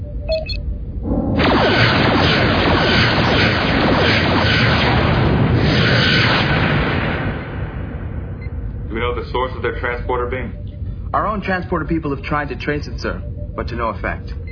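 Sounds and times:
brief electronic beep: 0.0s - 1.9s, 8.3s - 14.5s
loud dense roaring whoosh and rumble: 0.9s - 9.0s
sci-fi photon torpedoes fired for a warning display blast: 1.0s - 8.4s
speech: 9.3s - 14.4s.

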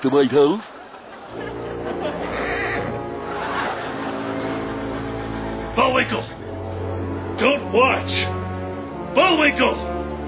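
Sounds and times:
speech: 0.0s - 1.6s, 5.8s - 6.4s, 7.4s - 8.4s, 9.2s - 9.9s
laughter: 0.0s - 6.3s
horse neighing: 1.9s - 3.2s.

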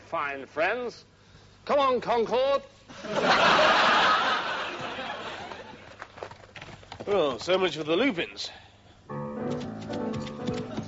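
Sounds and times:
speech: 0.1s - 4.4s, 7.1s - 9.2s
laughter: 2.9s - 5.9s
galloping horse hooves clip-clopping: 6.2s - 7.6s, 9.5s - 10.8s.

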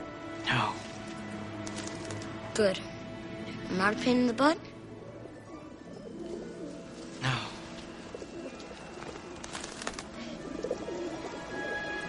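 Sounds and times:
speech: 0.5s - 0.8s, 2.6s - 2.9s, 3.7s - 4.7s
pigeons cooing: 5.3s - 12.0s.

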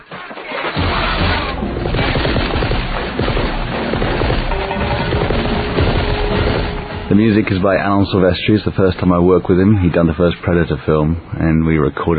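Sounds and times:
heavy gunfire in a film's opening action sequence: 0.6s - 7.4s
speech: 7.2s - 12.1s.

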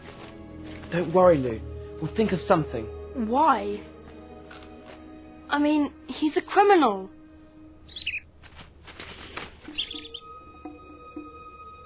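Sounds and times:
speech: 0.9s - 3.9s, 5.5s - 7.2s
bird breathy hissing psst-like call: 7.9s - 8.2s, 9.7s - 10.3s
bird giving sharp high chirps: 7.9s - 8.3s, 9.0s - 10.4s.

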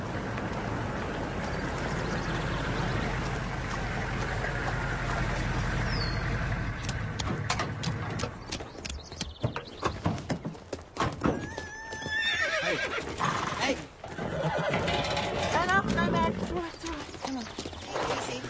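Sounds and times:
sharp hoof clops: 0.2s - 13.4s, 14.0s - 18.3s
horse whinnying loudly: 11.3s - 16.6s.

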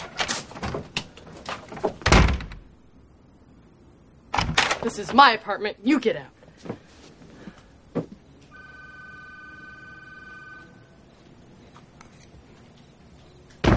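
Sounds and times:
door shutting with a heavy thud: 1.8s - 2.7s, 4.3s - 4.8s, 13.6s - 13.7s
speech: 4.8s - 6.8s
telephone ringing with an electronic trill: 8.4s - 11.8s.

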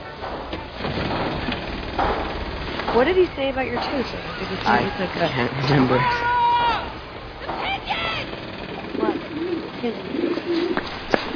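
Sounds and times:
hum: 0.0s - 11.3s
speech: 2.9s - 6.3s, 9.8s - 10.9s
pigeon cooing: 8.6s - 11.3s.

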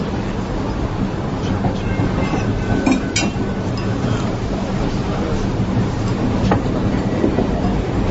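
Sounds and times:
train rumbling along rails heard from inside a carriage: 0.0s - 8.0s
sharp metallic train clacks and knocks: 2.2s - 3.9s.

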